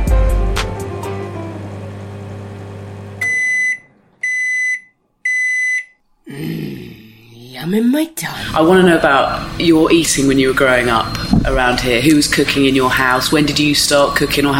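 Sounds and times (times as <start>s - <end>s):
shrill electronic alarm beeps: 3.2s - 6.0s
speech: 7.6s - 14.5s
low rumble: 11.0s - 12.2s
clattering noise: 11.2s - 12.0s.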